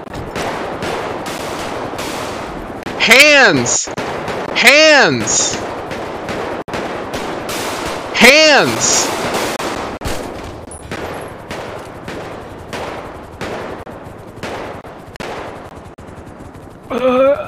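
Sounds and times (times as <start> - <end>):
video game gunfire: 0.0 - 15.7
speech: 3.0 - 4.0, 4.6 - 5.7, 8.3 - 9.2
brief voice: 4.6 - 5.6.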